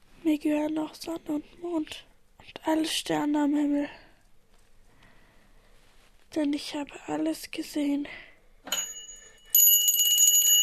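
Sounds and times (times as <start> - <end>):
speech: 0.4 - 4.0, 6.3 - 8.3
hand bell from bedside table ringing rapidly: 8.7 - 10.6.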